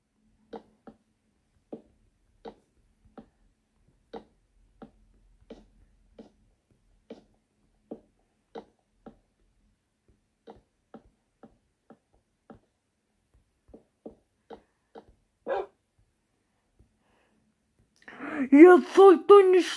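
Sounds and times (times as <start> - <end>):
dog barking in short sharp yaps: 15.5 - 15.8
speech: 18.4 - 19.7.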